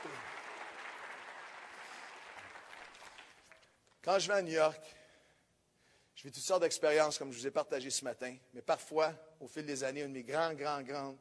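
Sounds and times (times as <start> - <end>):
crowd applauding: 0.0 - 3.7
speech: 4.0 - 5.0, 6.2 - 11.2.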